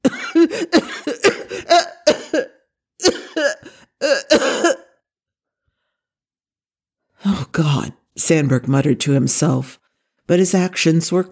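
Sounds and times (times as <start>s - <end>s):
person coughing violently with harsh hacking coughs: 0.0s - 5.0s
speech: 0.4s - 1.4s, 7.6s - 11.3s.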